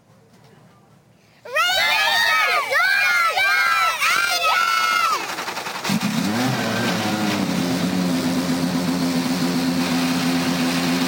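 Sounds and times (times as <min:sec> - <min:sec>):
faint crowd: 0:00.0 - 0:05.3
many race car engines firing up, revving and idling: 0:05.3 - 0:11.0.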